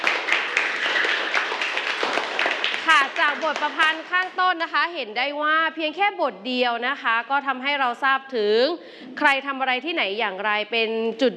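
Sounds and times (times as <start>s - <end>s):
classroom group clapping: 0.0s - 4.8s
speech: 3.3s - 11.3s.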